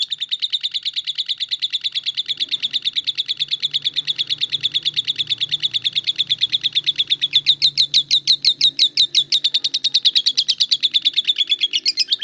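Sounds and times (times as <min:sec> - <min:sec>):
lovebird rattling trill: 0:00.0 - 0:12.2.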